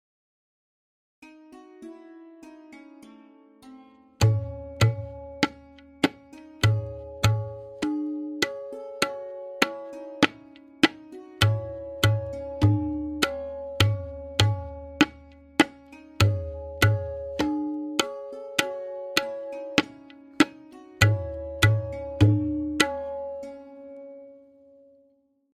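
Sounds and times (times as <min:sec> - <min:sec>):
lehra melody: 0:01.2 - 0:25.0
tabla playing a Benares kaida in tintal: 0:04.2 - 0:23.8.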